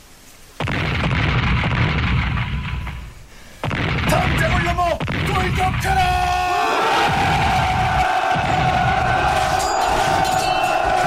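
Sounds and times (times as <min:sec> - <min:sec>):
cannon fire from enemy guns in a battle: 0:00.6 - 0:06.3, 0:07.0 - 0:10.3
steady battle din: 0:04.0 - 0:11.0.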